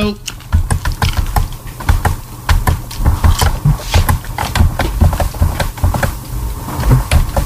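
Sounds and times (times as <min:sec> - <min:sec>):
speech: 0:00.0 - 0:00.3
low hum: 0:00.0 - 0:07.4
rapid computer keyboard typing: 0:00.3 - 0:06.2.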